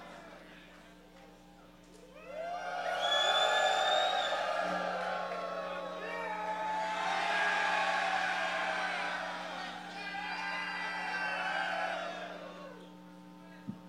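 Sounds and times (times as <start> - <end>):
live audience screaming and cheering in Philadelphia: 2.2 - 13.0.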